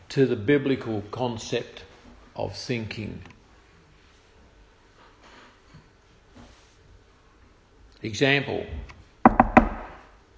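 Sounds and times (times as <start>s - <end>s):
speech: 0.1s - 3.4s, 8.0s - 9.0s
firm knocking on a door: 9.2s - 10.1s.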